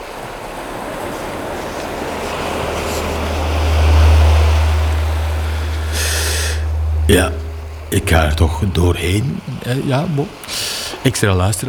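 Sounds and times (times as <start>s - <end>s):
murmur of the sea: 0.0s - 11.6s
deep low rumble: 2.5s - 9.7s
speech: 7.1s - 11.6s.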